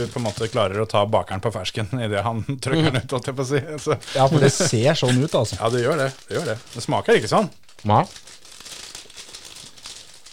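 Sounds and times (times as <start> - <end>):
paper wrapping crinkling: 0.0 - 0.9, 4.0 - 10.3
speech: 0.0 - 8.4
laughter: 2.7 - 5.7.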